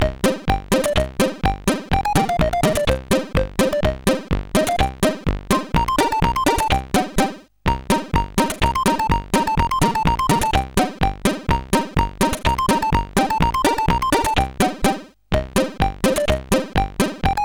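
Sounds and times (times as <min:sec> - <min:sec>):
chiptune music on a CSG8580R5 sound chip: 0:00.0 - 0:17.4.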